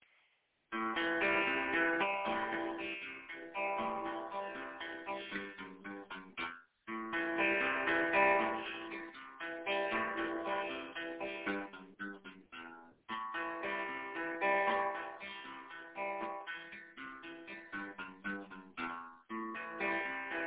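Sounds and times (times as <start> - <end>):
arpeggiated minor lick: 0.8 - 20.4.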